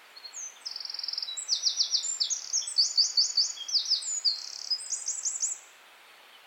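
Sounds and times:
Eurasian wren Troglodytes troglodytes song: 0.1 - 6.4.

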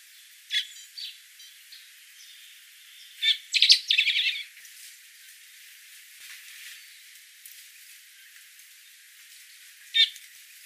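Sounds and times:
common blackbird Turdus merula calling: 0.5 - 1.6, 2.2 - 4.5, 10.0 - 10.2.

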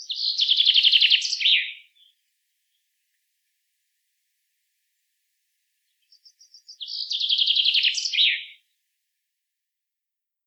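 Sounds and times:
common chaffinch Fringilla coelebs singing: 0.0 - 2.1, 6.0 - 8.6.

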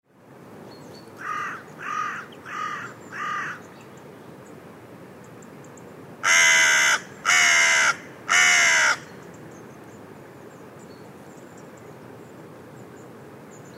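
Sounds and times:
carrion crow Corvus corone cawing: 1.2 - 3.6, 6.2 - 9.1.

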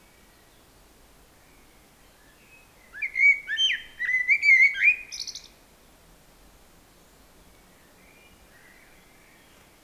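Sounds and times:
Common blackbird Turdus merula giving fluty whistles: 3.0 - 5.4.

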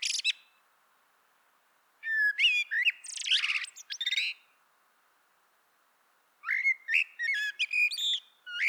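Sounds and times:
Common blackbird song: 0.0 - 0.6, 2.0 - 4.5, 6.4 - 8.6.

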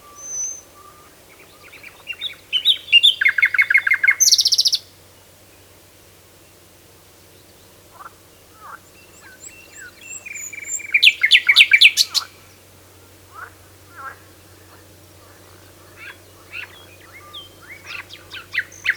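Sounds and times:
common nightingale singing, Luscinia megarhynchos: 0.0 - 4.9, 8.6 - 12.4, 15.4 - 18.9.

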